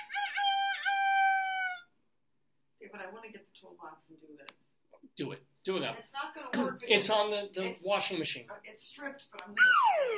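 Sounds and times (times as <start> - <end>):
rooster crow sound effect: 0.0 - 2.0
speech: 3.1 - 10.1.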